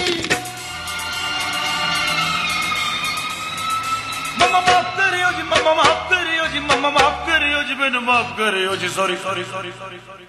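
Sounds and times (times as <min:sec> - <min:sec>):
fire engine siren wailing: 0:01.0 - 0:06.2
speech: 0:06.5 - 0:10.2.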